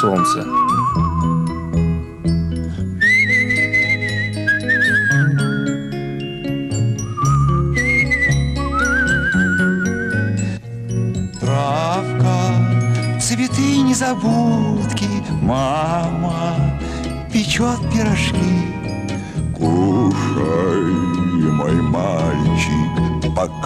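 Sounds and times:
speech: 0:00.0 - 0:01.1, 0:13.3 - 0:16.8, 0:17.4 - 0:18.8, 0:19.6 - 0:23.5
person whistling a melody in a sunlit wood: 0:00.0 - 0:01.8, 0:02.8 - 0:05.8, 0:07.0 - 0:10.6, 0:12.5 - 0:23.6
tinkling jingling music: 0:00.0 - 0:23.6.

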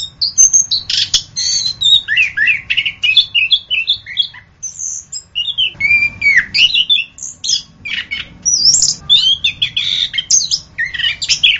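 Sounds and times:
orange-headed thrush singing: 0:00.0 - 0:11.5.

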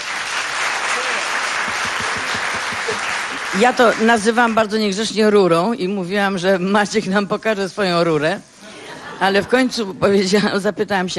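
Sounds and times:
audience applause: 0:00.0 - 0:04.5
speech: 0:03.5 - 0:08.5, 0:09.2 - 0:11.1.

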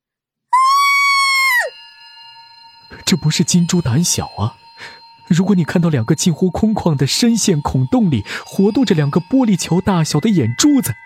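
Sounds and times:
man screaming in terror: 0:00.6 - 0:01.7
faint steady tone: 0:01.7 - 0:11.0
speech: 0:02.9 - 0:11.0.

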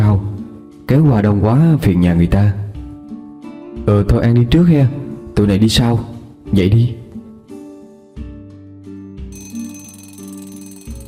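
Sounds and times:
speech: 0:00.9 - 0:02.6, 0:03.9 - 0:07.0
school dismissal bell ringing: 0:09.3 - 0:11.0.

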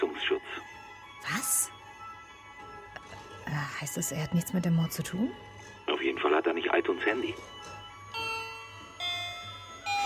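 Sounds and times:
speech: 0:03.8 - 0:07.7
doorbell ringing in soft chimes: 0:07.0 - 0:10.0.

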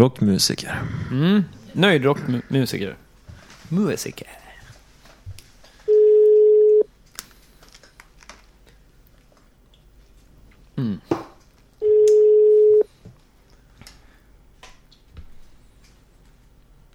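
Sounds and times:
speech: 0:00.0 - 0:03.0, 0:03.7 - 0:04.4, 0:10.8 - 0:11.2
telephone ringback tones while a call goes out: 0:05.9 - 0:06.9, 0:11.8 - 0:12.9.

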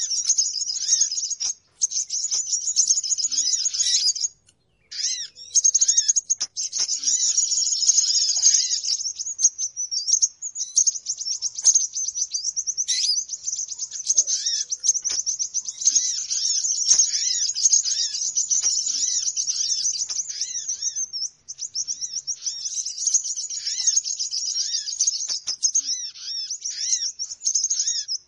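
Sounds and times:
bird calls used as a lure sound to attract birds: 0:00.0 - 0:28.2.

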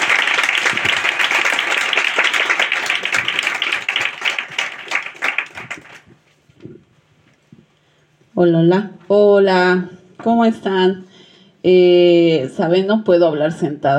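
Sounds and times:
audience applause at a presentation on feminist concepts: 0:00.0 - 0:06.1
speech: 0:08.4 - 0:13.9.

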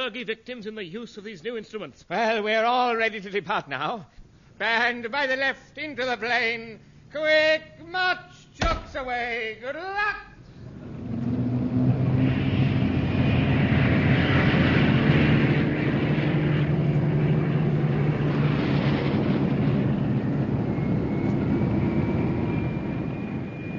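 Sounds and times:
speech: 0:00.0 - 0:10.3
many propeller aircraft engines roaring during takeoff: 0:10.4 - 0:23.7.

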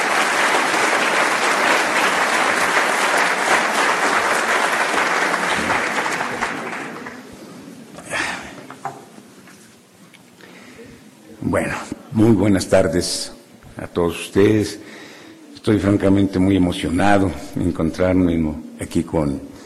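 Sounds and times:
audience applauding an engineer at a research centre's anniversary ceremony: 0:00.0 - 0:07.4
speech: 0:11.6 - 0:13.4, 0:14.0 - 0:14.9, 0:15.6 - 0:19.5.

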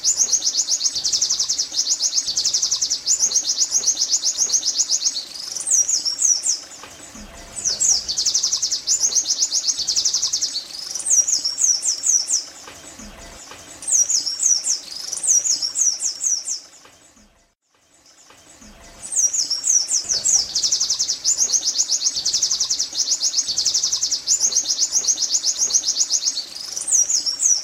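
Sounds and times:
white-eye song with fast high trills and scratchy twittered phrases: 0:00.0 - 0:16.8, 0:18.8 - 0:27.6.

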